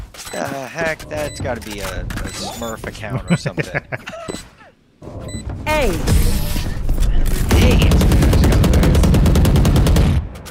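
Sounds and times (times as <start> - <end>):
speech: 0.4 - 4.5, 5.7 - 6.4
laughter: 2.9 - 4.7
rapid automatic gunfire in a video game: 7.4 - 10.4.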